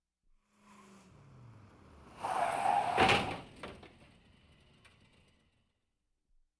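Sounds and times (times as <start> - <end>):
rear-end vehicle crash: 0.6 - 5.7
car tyres screeching before rear-end collision: 2.1 - 3.4.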